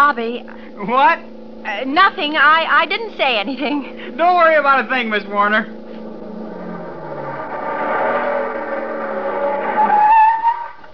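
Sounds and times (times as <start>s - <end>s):
car engine roaring at about 65 miles an hour: 0.0s - 10.9s
speech: 0.1s - 5.8s
car tires squealing while skidding to a stop: 5.6s - 10.9s.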